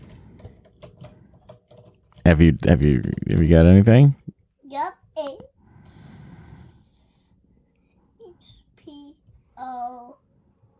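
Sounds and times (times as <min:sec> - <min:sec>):
child typing on a computer keyboard: 0:00.0 - 0:03.8
speech: 0:02.3 - 0:04.2.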